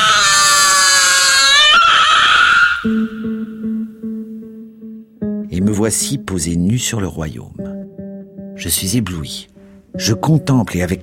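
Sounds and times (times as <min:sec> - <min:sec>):
newborn baby squealing cry: 0:00.0 - 0:03.6
speech: 0:05.8 - 0:07.8, 0:08.6 - 0:11.0.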